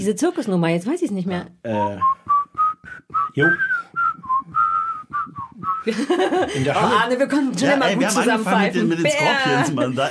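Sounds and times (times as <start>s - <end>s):
speech: 0.0s - 2.3s, 3.4s - 3.8s, 5.8s - 10.0s
person whistling a short melodic tune: 1.7s - 5.9s
laughter: 5.8s - 10.0s.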